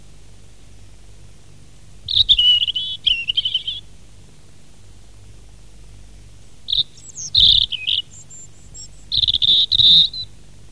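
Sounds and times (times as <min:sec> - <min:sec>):
European robin singing: 0:02.1 - 0:03.9, 0:06.7 - 0:10.4.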